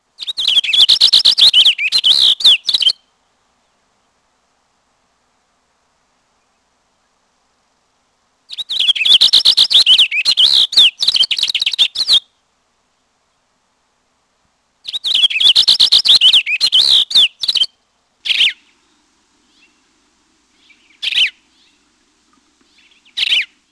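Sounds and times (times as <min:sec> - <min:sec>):
Cassin's finch: 0:00.2 - 0:03.0, 0:08.5 - 0:12.2, 0:14.8 - 0:23.7.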